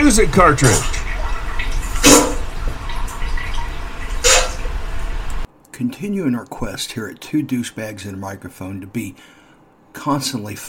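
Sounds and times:
steady running water from a water-sound machine: 0.0 - 5.5
speech: 0.1 - 1.0, 5.8 - 9.4, 10.0 - 10.6.

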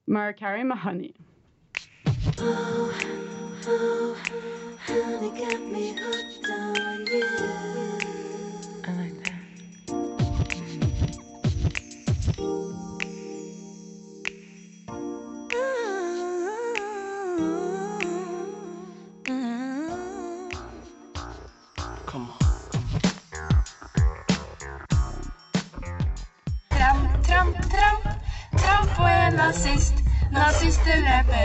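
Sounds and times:
speech: 0.1 - 1.3, 2.2 - 8.2
looping hip-hop sample with steady bass groove and chiming tones: 1.8 - 13.3, 19.9 - 27.9, 28.6 - 31.4
sung melodic vocal line in a pop song: 2.4 - 13.6, 15.4 - 22.8, 26.7 - 31.4.

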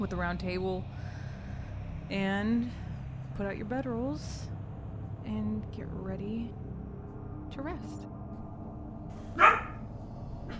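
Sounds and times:
speech: 0.0 - 1.0, 2.1 - 2.8, 3.4 - 4.6, 5.2 - 6.6, 7.5 - 8.1, 9.4 - 9.6
low steady rumble: 0.0 - 10.5
dog barking: 9.4 - 9.8.

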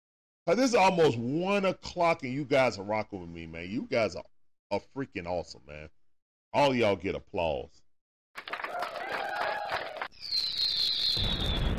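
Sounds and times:
speech: 0.5 - 7.8
high slightly falling firework whistle: 9.2 - 11.7
fireworks sound effect crackling: 10.0 - 11.7.

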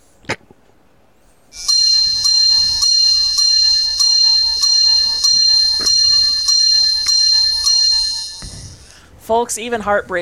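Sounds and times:
bright metallic bells ringing in rapid strikes: 1.6 - 8.6
speech: 9.3 - 10.1.

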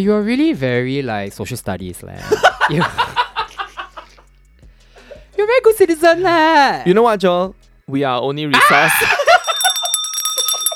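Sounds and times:
speech: 0.0 - 3.2, 5.4 - 9.2
laughter: 2.2 - 4.2, 8.6 - 10.0
censorship bell sound effect: 9.2 - 10.7.

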